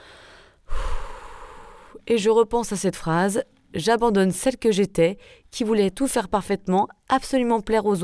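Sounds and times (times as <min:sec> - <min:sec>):
single deep breath taken close to the mic: 0:00.0 - 0:02.0
speech: 0:02.0 - 0:08.0.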